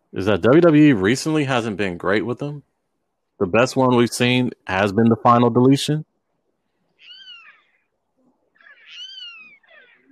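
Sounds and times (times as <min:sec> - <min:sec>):
speech: 0:00.1 - 0:02.7, 0:03.4 - 0:06.1
territorial hawks screeching outdoors: 0:08.6 - 0:10.1.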